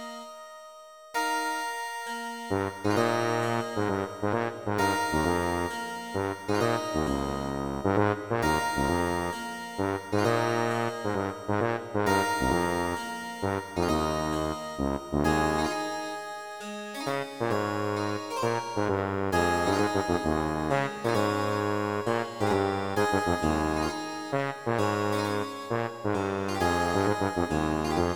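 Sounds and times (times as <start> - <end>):
harpsichord: 1.2 - 28.1
chiptune music: 1.4 - 28.1
tuba: 2.5 - 16.2, 17.0 - 28.1.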